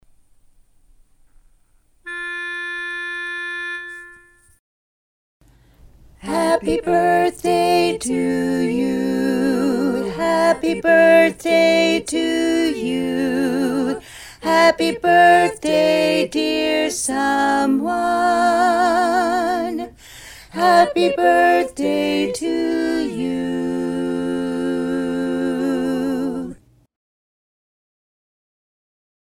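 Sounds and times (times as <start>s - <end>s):
chorus singing: 6.2s - 26.6s.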